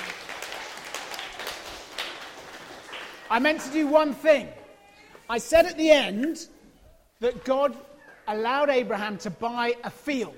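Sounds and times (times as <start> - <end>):
audience applauding: 0.0 - 4.0
speech: 3.3 - 4.6, 5.3 - 6.5, 7.2 - 10.3.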